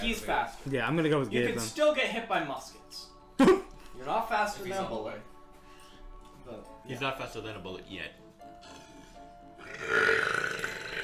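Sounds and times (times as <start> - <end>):
speech: 0.0 - 5.3, 6.5 - 8.2
long throaty burp: 8.6 - 11.0.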